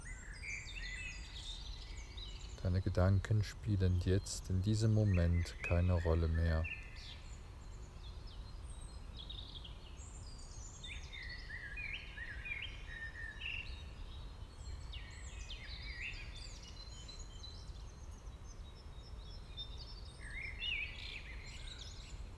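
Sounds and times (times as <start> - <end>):
several birds chirping and singing: 0.0 - 7.2
speech: 2.6 - 6.8.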